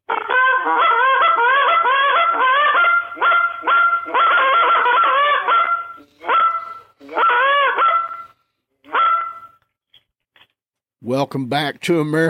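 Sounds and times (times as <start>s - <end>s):
person imitating a goose call with nasal honking: 0.1s - 9.4s
speech: 11.2s - 12.2s.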